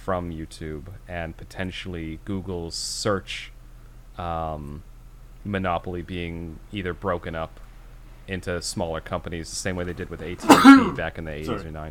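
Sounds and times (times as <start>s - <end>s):
speech: 0.0s - 3.6s, 4.2s - 7.6s, 8.3s - 11.8s
person sneezing: 10.4s - 11.6s.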